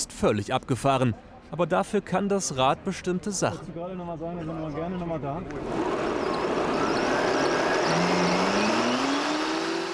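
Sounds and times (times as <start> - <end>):
speech: 0.1 - 6.3
loud rush of wind and road noise: 5.5 - 9.9
electric fatbike motor whine accelerating without pedaling in Gronau: 5.6 - 9.9.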